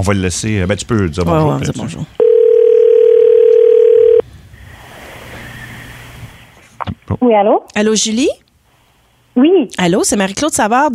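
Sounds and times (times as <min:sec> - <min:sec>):
speech: 0:00.0 - 0:02.2, 0:07.2 - 0:08.4, 0:09.4 - 0:10.9
telephone dial tone while placing a call: 0:02.2 - 0:04.2.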